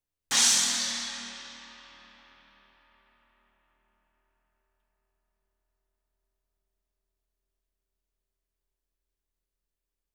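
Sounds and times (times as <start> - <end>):
18-inch China crash cymbal: 0.3 - 2.6.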